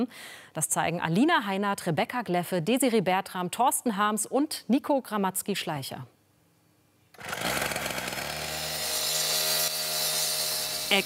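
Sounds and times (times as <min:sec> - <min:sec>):
speech: 0:00.0 - 0:06.2, 0:07.2 - 0:07.5
loud power tool at a construction site in Huchting Bremen Germany: 0:07.2 - 0:11.0.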